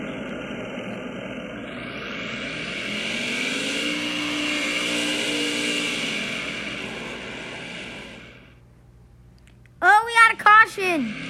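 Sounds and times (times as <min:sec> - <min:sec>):
pack of race car engines accelerating at a race restart: 0:00.0 - 0:08.6
speech: 0:10.8 - 0:11.2.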